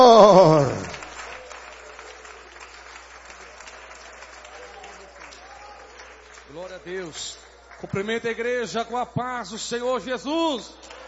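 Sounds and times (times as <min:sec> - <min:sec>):
church audience applauding: 0:00.0 - 0:08.4, 0:10.8 - 0:11.0
speech: 0:06.8 - 0:11.0.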